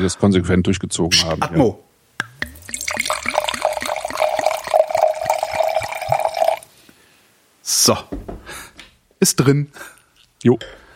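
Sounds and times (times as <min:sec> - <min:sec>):
speech: 0:00.0 - 0:01.8, 0:07.9 - 0:08.2, 0:09.2 - 0:10.8
water pouring into a glass: 0:02.2 - 0:06.7.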